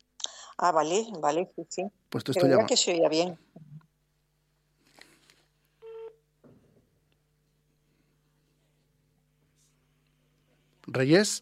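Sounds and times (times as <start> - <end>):
low steady hum: 0.0 - 11.4
speech: 0.6 - 3.6, 11.0 - 11.4
electronic phone keypad tone of a call being dialed: 5.8 - 6.2.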